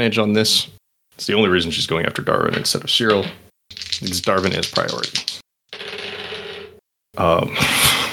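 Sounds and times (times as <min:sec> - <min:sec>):
speech: 0:00.0 - 0:05.4, 0:07.2 - 0:07.8
two dice rolling on a table: 0:02.5 - 0:06.8.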